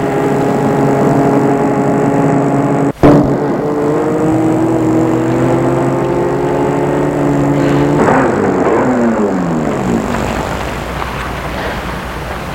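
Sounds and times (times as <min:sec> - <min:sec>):
car engine droning while driving: 0:00.0 - 0:12.5.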